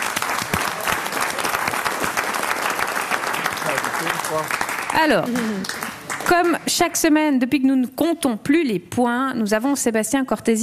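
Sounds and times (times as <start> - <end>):
studio audience applause: 0.0 - 6.7
speech: 4.0 - 10.6.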